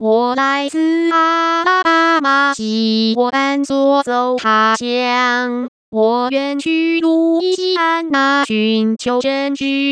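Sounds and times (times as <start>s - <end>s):
synthetic female singing voice: 0.0s - 9.8s.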